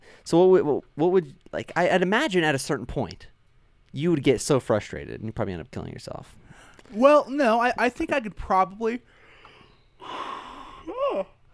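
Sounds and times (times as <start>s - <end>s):
speech: 0.2s - 3.3s, 3.9s - 9.2s, 10.0s - 10.4s, 11.1s - 11.4s
single yawn with breathy inhale and falling groan: 10.0s - 11.5s.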